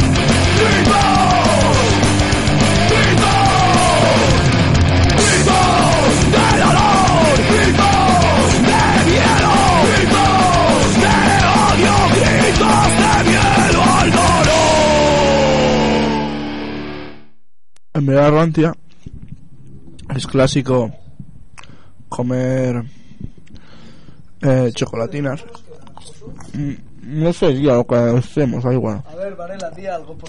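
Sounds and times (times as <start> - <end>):
crowd yelling at a live Republic celebration evening: 0.0 - 16.8
speech: 18.1 - 18.8, 20.2 - 21.0, 22.1 - 23.3, 24.4 - 25.6, 26.2 - 30.2.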